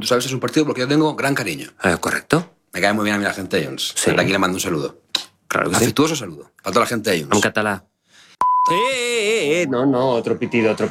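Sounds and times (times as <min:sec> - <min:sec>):
speech: 0:00.0 - 0:07.9, 0:08.7 - 0:10.8
high censor bleep tone: 0:08.4 - 0:09.0.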